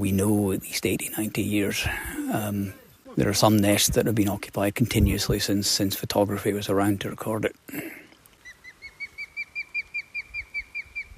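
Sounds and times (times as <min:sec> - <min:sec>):
speech: 0:00.0 - 0:07.9
bird giving a serious alarm call near its nest: 0:08.4 - 0:11.1.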